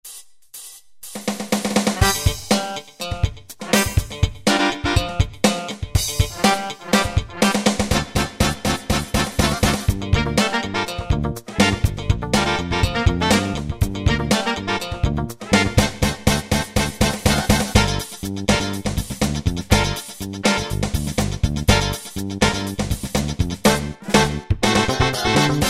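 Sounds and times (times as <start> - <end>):
funk preset style on a Yamaha QY70: 1.6 - 25.6.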